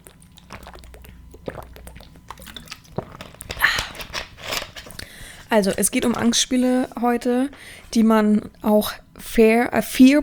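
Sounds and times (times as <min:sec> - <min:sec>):
gulping swallows of water: 0:00.0 - 0:04.0
lip smacks while sipping water: 0:00.0 - 0:04.0
wet mouth clicks: 0:00.0 - 0:04.0
speech: 0:05.5 - 0:10.2.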